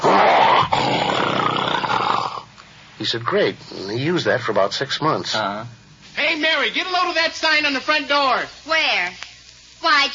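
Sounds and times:
man imitating a bear's growl with his voice: 0.0 - 2.5
speech: 3.0 - 9.2, 9.8 - 10.1.

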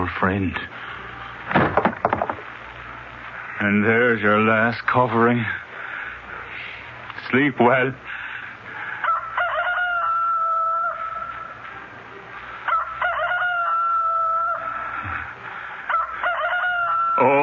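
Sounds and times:
speech: 0.1 - 0.8, 3.6 - 5.6, 7.3 - 8.0
rooster crowing: 9.0 - 11.6, 12.6 - 17.4.

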